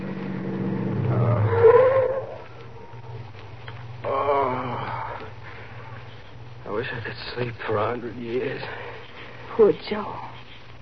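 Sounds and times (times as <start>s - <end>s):
car engine rumble pulling off the road to park at night: 0.0s - 4.2s
high tonal whine: 0.0s - 10.8s
speech: 6.9s - 8.9s, 9.6s - 10.3s.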